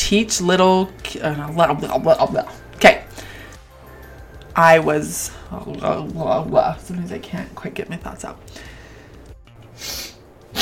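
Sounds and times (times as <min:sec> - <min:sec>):
speech: 0:00.1 - 0:03.3, 0:04.6 - 0:08.7, 0:09.8 - 0:10.0
sniff through the nose: 0:09.7 - 0:10.6.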